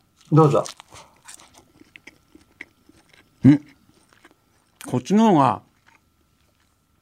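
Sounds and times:
person biting and chewing grilled food: 0.0 - 5.0, 5.6 - 7.0
speech: 0.3 - 1.1, 3.4 - 3.7, 4.9 - 5.7.

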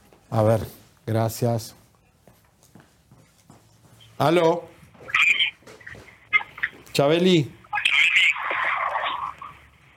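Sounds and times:
speech: 0.3 - 1.8, 4.2 - 4.7, 7.0 - 7.6
caller's own voice echoing back thin and tinny through a phone line: 6.4 - 9.6.

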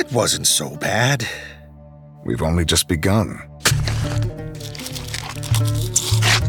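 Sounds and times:
speech: 0.0 - 1.6, 2.2 - 3.5
blade slicing into a body's flesh: 3.6 - 6.4.

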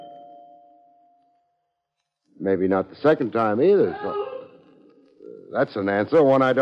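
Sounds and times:
doorbell ding-dong chime: 0.0 - 1.2
speech: 2.4 - 4.3, 5.5 - 6.5.

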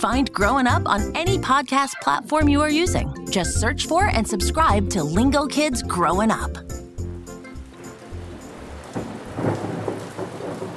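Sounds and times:
speech: 0.0 - 6.7
steady rain: 6.8 - 10.7
low rumbles of thunder: 7.1 - 10.7.

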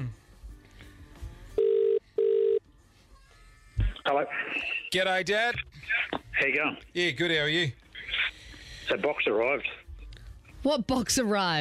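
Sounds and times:
telephone ringback tone heard over the line: 1.6 - 2.6
speech: 4.1 - 5.7, 6.4 - 7.8, 8.9 - 9.8, 10.6 - 11.6.

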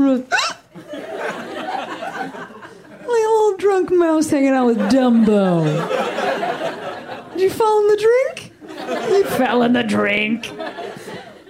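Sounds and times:
speech: 0.0 - 0.4, 3.8 - 6.1, 7.4 - 10.6
high-pitched hiccups: 0.3 - 0.7
laughter: 0.3 - 3.2, 4.7 - 7.7, 8.6 - 11.4.

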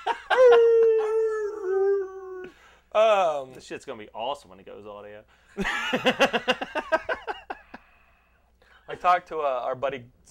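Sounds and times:
person imitating a howling dog: 0.3 - 2.5
speech: 0.4 - 0.7, 3.0 - 6.8, 9.0 - 10.2.

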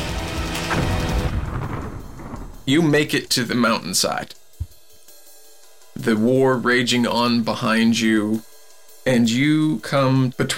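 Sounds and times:
deep rumbling explosions booming in the air: 0.7 - 3.2
speech: 2.7 - 4.4, 6.0 - 10.5.

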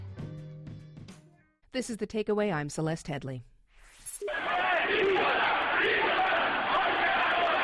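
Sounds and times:
speech: 1.8 - 3.5
large protest crowd shouting during clashes with police in Tehran: 4.2 - 7.6.

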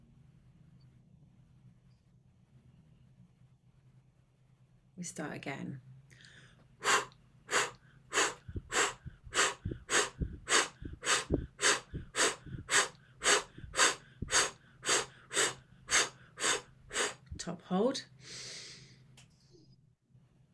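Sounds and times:
speech: 5.0 - 5.9
person breathing rhythmically during a breathing exercise: 6.1 - 17.4, 18.2 - 19.1.

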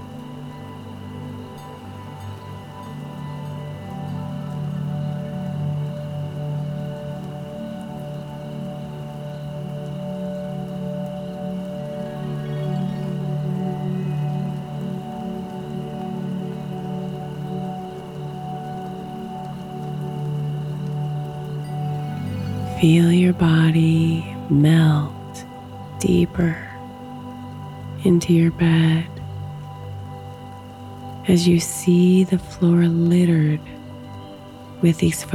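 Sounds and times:
rain falling: 0.0 - 35.3
speech: 22.8 - 26.7, 28.0 - 29.1, 31.2 - 33.7, 34.8 - 35.3.

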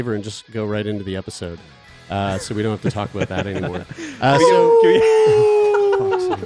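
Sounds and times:
speech: 0.0 - 5.6
faint chuckling or chatter: 2.3 - 6.4
person imitating a wolf howl: 4.3 - 6.4.

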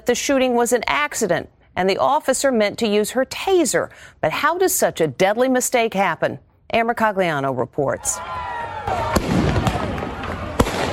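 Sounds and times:
speech: 0.0 - 9.3
outdoor crowd shouting in street commotion: 8.2 - 10.7
firework bangs during street unrest: 8.9 - 10.9.

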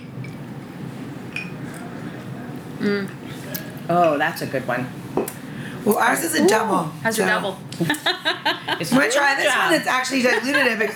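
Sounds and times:
steady murmur of room noise: 0.0 - 10.9
glasses clinking in a cheers toast: 1.3 - 1.9
speech: 2.8 - 10.9.

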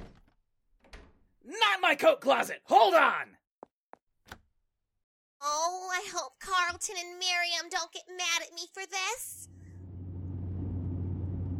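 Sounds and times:
speech: 1.8 - 3.4, 5.4 - 9.5
van engine rumble and road drone while driven fast: 9.5 - 11.5.

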